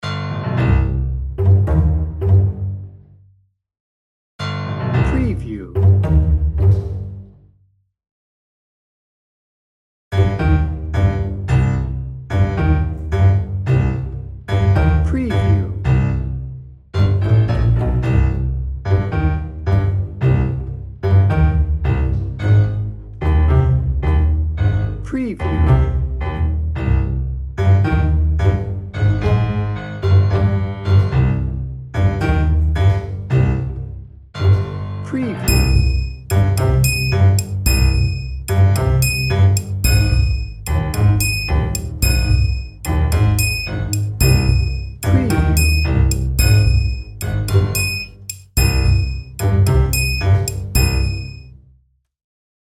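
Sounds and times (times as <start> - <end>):
tango piano: 0.0 - 3.0, 4.4 - 7.3, 10.1 - 51.5
tango bass: 0.0 - 3.2, 4.4 - 7.5, 10.1 - 51.7
tango percussion: 35.5 - 51.5.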